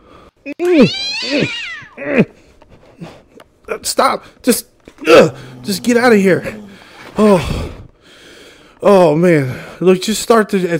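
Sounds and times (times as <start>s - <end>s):
speech: 0.5s - 2.3s, 3.8s - 6.6s, 7.2s - 7.6s, 8.8s - 10.7s
agitated cat meowing and yowling: 0.8s - 2.0s.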